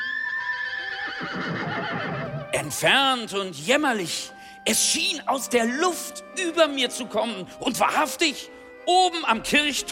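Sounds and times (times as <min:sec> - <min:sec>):
horse neighing in a long wavering whinny: 0:00.0 - 0:02.6
speech: 0:02.6 - 0:09.8.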